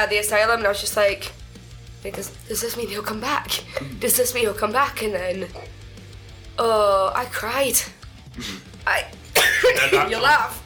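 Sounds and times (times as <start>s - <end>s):
speech: 0.0s - 1.4s, 2.0s - 5.8s, 6.6s - 10.6s
raspy voiced throat sounds: 3.6s - 4.1s, 8.3s - 8.8s
person coughing: 3.7s - 4.1s, 8.4s - 8.7s, 9.4s - 10.2s.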